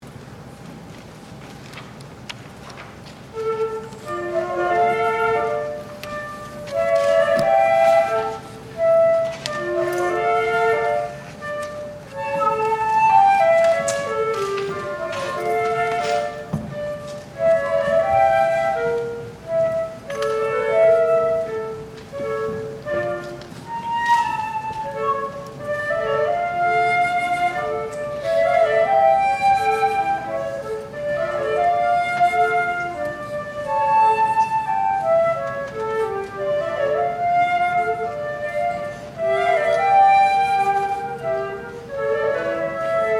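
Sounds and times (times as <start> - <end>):
flute duet: 0.6 - 43.1.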